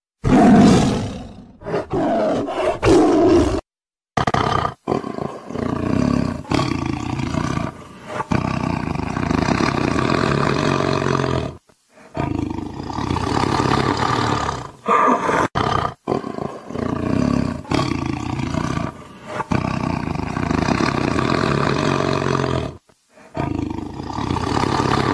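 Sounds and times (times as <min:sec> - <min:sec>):
tiger vocalizing: 0:00.3 - 0:03.6, 0:04.2 - 0:11.2, 0:12.0 - 0:25.1.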